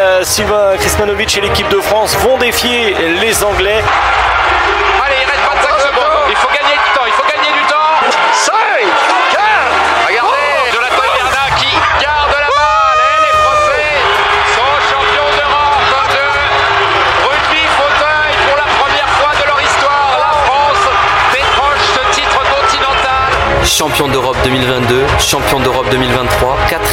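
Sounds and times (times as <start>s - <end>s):
speech: 0.2s - 5.7s, 23.7s - 26.9s
crowd shouts at a wheelchair rugby match: 3.5s - 23.6s
dense crowd hubbub at a wheelchair rugby match: 3.6s - 26.9s.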